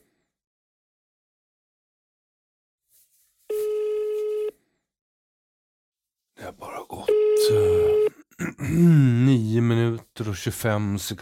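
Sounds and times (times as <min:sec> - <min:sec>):
electronic ringback tones on a phone line while calling the police: 0:03.5 - 0:04.6, 0:07.1 - 0:08.2
speech: 0:08.8 - 0:09.0, 0:10.2 - 0:11.2.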